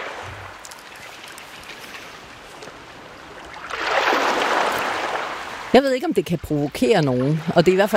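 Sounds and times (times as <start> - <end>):
sea waves lapping at the shore by a summer house: 0.0 - 7.9
speech: 5.7 - 7.9.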